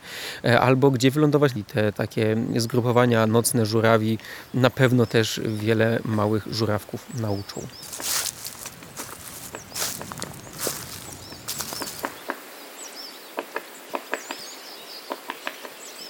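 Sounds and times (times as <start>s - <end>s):
speech: 0.4s - 8.1s
small birds chirping and calling: 3.5s - 12.2s
crunching footsteps on forest litter in a beech forest: 6.8s - 12.2s.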